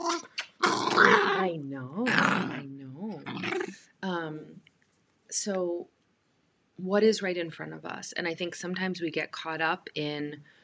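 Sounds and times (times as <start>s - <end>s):
dog growling: 0.0s - 2.6s, 3.2s - 3.8s
speech: 5.4s - 6.0s, 6.8s - 10.6s.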